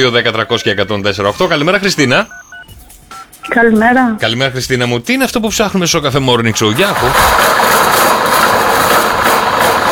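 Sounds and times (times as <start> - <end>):
speech: 0.0 - 2.4, 3.5 - 7.7
paper shredder shredding old photocopies: 6.6 - 9.9.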